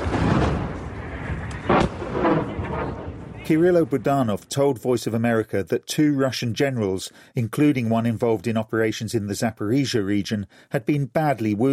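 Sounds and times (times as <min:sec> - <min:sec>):
large explosion from missile strike on damaged naval headquarters building: 0:00.0 - 0:04.1
speech: 0:03.5 - 0:11.7.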